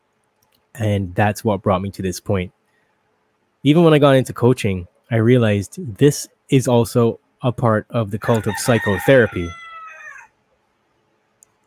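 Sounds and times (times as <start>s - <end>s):
speech: 0.8s - 2.6s, 3.6s - 9.6s
chicken squawk: 8.4s - 10.4s
faint tick: 11.4s - 11.6s.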